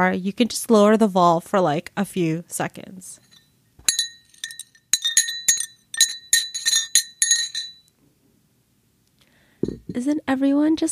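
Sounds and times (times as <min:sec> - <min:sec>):
speech: 0:00.0 - 0:03.2, 0:09.9 - 0:10.9
ice clinking against a glass of iced coffee: 0:03.9 - 0:07.9.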